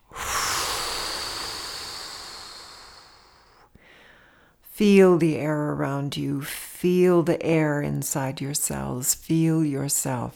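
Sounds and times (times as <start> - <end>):
deep breath blown out forcefully through the mouth in a breathing exercise: 0.0 - 4.4
speech: 4.8 - 10.3.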